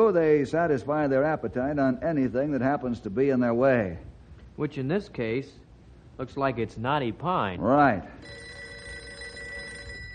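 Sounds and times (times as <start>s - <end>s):
speech: 0.0s - 5.6s, 6.2s - 8.4s
telephone ringing with a steady bell tone: 8.2s - 10.1s.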